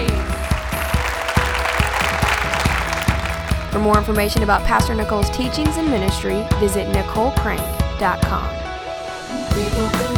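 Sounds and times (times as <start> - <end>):
church congregation applauding with hand clapping: 0.0 - 3.8
speech: 3.8 - 8.6, 9.6 - 10.1.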